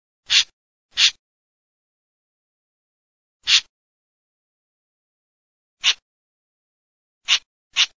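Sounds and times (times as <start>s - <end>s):
Eurasian jay calling: 0.3s - 1.2s, 3.4s - 3.7s, 5.8s - 6.0s, 7.2s - 7.9s.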